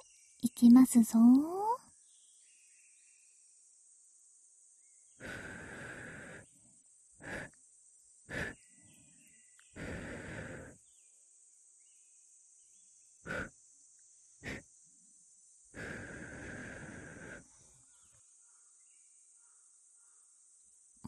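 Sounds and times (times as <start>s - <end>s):
speech: 0.4s - 1.6s
breath blown softly into the microphone: 5.2s - 6.5s, 7.2s - 7.6s, 8.3s - 8.6s, 9.8s - 10.8s, 13.3s - 13.5s, 14.4s - 14.7s, 15.8s - 17.5s.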